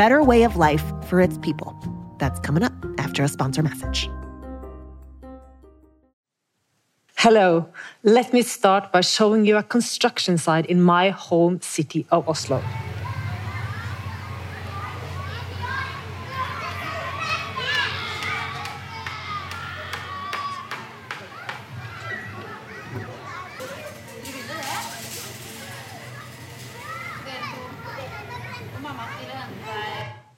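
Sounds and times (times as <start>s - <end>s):
speech: 0.0s - 4.2s, 7.2s - 13.0s
children playing at a kindergarten beside a construction site: 12.5s - 30.2s.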